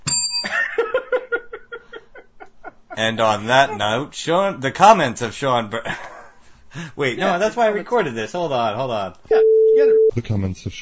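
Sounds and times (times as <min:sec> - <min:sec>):
bell ringing: 0:00.0 - 0:00.7
speech: 0:03.0 - 0:06.1, 0:06.7 - 0:10.8.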